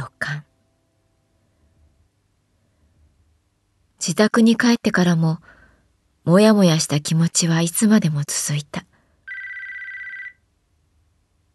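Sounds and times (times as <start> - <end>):
speech: 4.1 - 5.6, 6.2 - 8.9
mobile phone ringtone: 9.3 - 10.4.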